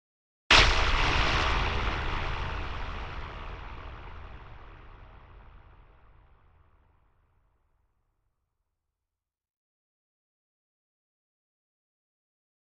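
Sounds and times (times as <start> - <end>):
electric static hit: 0.5 - 5.3.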